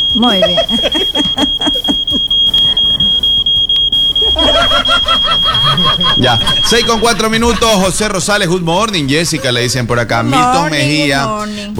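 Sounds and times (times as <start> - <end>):
laughter: 0.0 - 11.7
smoke detector alarm beeping: 0.0 - 11.7
speech: 0.2 - 1.8, 6.0 - 11.7
low rumble of noise: 4.1 - 11.2.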